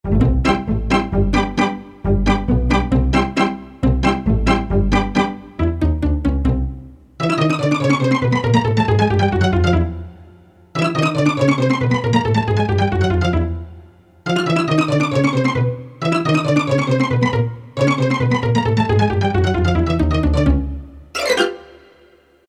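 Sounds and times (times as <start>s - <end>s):
pizzicato strings in octaves from a synthesizer preset: 0.1s - 10.1s, 10.8s - 13.6s, 14.3s - 22.1s.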